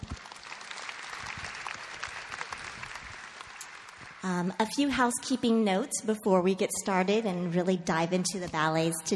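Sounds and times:
audience applause at an opera house welcoming a guest: 0.0 - 4.3
speech: 4.2 - 9.1.

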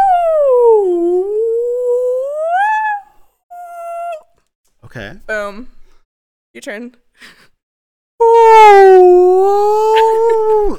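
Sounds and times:
person imitating a whale call: 0.0 - 4.2, 8.2 - 10.7
speech: 5.3 - 5.8, 6.6 - 7.5.

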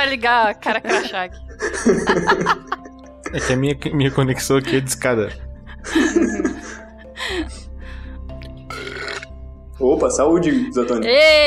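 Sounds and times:
speech: 0.0 - 6.6, 9.8 - 11.4
scattered laughter and chuckling: 0.6 - 7.6
loud guttural burp: 8.7 - 9.3.

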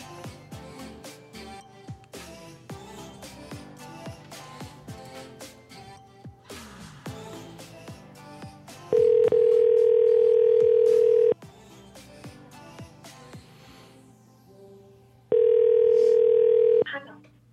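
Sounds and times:
telephone tone of an outgoing call: 9.0 - 11.4, 15.3 - 16.8.

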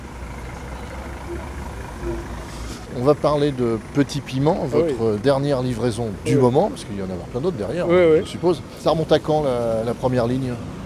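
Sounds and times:
buses and trams with heavy engines idling and moving at a street crossing: 0.0 - 10.8
speech: 3.0 - 10.8.

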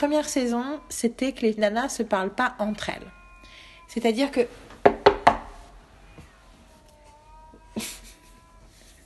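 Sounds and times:
cat's drawn-out meow: 0.0 - 1.6, 2.6 - 4.3, 6.0 - 9.0
speech: 0.0 - 3.2, 3.9 - 4.7, 7.8 - 8.0
quick sharp knocks on a window: 4.8 - 5.5
laughter: 7.8 - 8.4.

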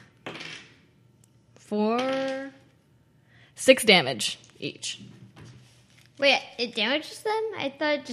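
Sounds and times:
dice rolled across a tabletop during a game: 0.2 - 0.8
speech: 1.7 - 2.5, 3.6 - 5.2, 6.2 - 8.1.

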